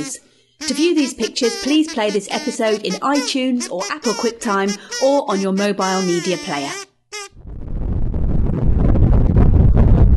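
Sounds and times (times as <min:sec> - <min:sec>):
speech: 0:00.0 - 0:06.9
wind whistling and roaring over the roof of a moving car: 0:07.4 - 0:10.1.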